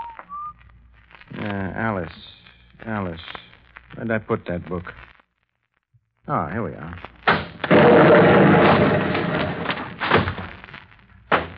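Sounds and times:
speech: 0:01.5 - 0:03.4, 0:04.0 - 0:05.1, 0:06.3 - 0:07.1
debris settling with crashing thuds: 0:07.3 - 0:10.6
explosion: 0:07.6 - 0:10.6.

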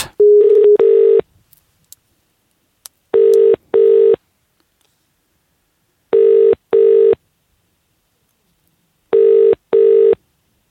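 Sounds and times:
telephone ringing tone down the line: 0:00.2 - 0:01.2, 0:03.2 - 0:04.2, 0:06.1 - 0:07.2, 0:09.1 - 0:10.2.

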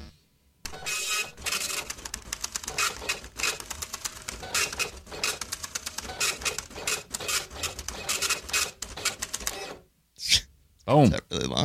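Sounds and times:
printer printing out a page: 0:00.7 - 0:09.9
speech: 0:10.9 - 0:11.6.

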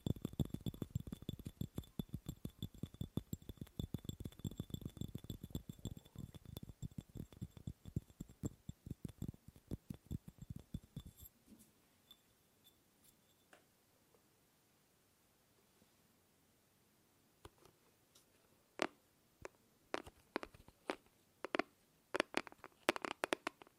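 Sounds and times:
fast and slow tapping on objects: 0:00.0 - 0:11.3, 0:18.8 - 0:23.7.

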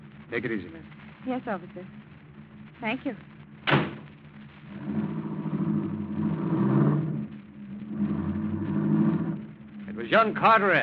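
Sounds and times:
speech: 0:00.3 - 0:02.1, 0:02.8 - 0:03.3, 0:10.1 - 0:10.8
car engine revving as the car pulls away: 0:04.7 - 0:10.8.

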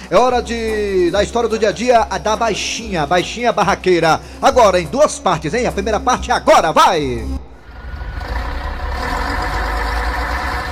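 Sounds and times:
speech: 0:00.1 - 0:07.4
large bus engine idling: 0:07.5 - 0:10.7.

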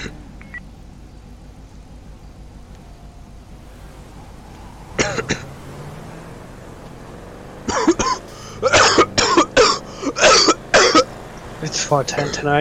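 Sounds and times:
person coughing: 0:07.7 - 0:11.0
speech: 0:11.9 - 0:12.5.

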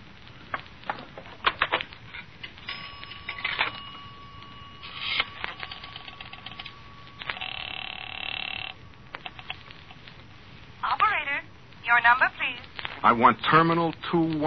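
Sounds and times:
telephone line tone during dialing: 0:02.7 - 0:10.1
buzzy telephone tone: 0:02.7 - 0:13.2
speech: 0:13.0 - 0:14.4.

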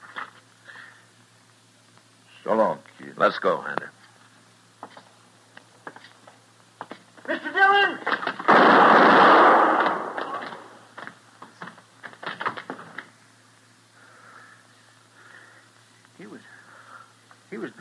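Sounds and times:
speech: 0:02.4 - 0:04.0
gunshot in an old-time Western radio drama: 0:08.4 - 0:10.8.

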